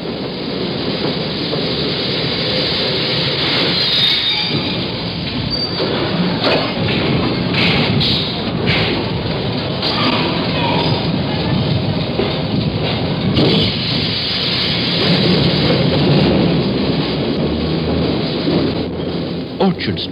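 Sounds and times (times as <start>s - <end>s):
subway train rising from the tunnel and slowing to a stop: 0.0s - 20.1s
subway train wheels grinding and screeching: 2.2s - 9.0s, 9.8s - 11.4s, 13.4s - 15.9s.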